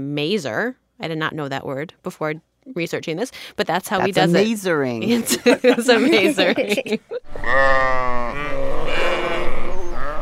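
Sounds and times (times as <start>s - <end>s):
speech: 0.0s - 8.6s
laughter: 5.0s - 7.3s
sheep bleating as a mistake sound: 7.4s - 10.1s.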